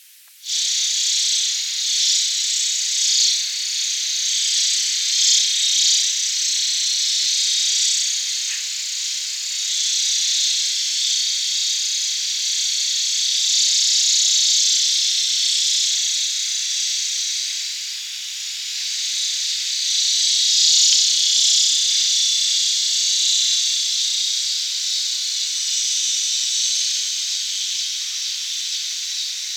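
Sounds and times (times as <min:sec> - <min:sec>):
Neotibicen linnei cicada: 0:00.0 - 0:29.5.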